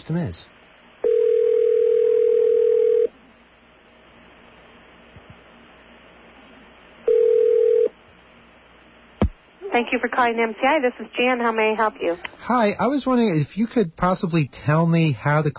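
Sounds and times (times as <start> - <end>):
speech: 0.0 - 0.6, 9.8 - 15.5
telephone dial tone on a line used to reach an operator: 1.0 - 3.1, 7.1 - 7.9.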